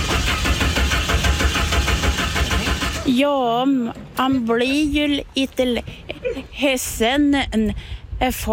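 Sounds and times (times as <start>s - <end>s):
car engine cranking without catching: 0.0s - 3.2s
speech: 3.1s - 8.5s.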